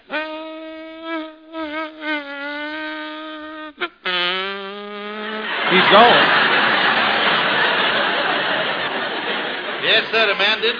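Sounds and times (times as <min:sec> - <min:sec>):
voice imitating a mosquito's whining buzz: 0:00.0 - 0:06.0
laughter: 0:05.2 - 0:10.7
speech: 0:05.7 - 0:06.4, 0:09.9 - 0:10.7.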